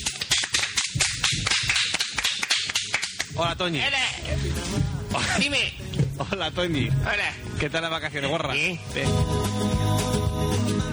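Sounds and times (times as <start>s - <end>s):
applause from a small group: 0.3s - 3.3s
speech: 3.4s - 9.9s.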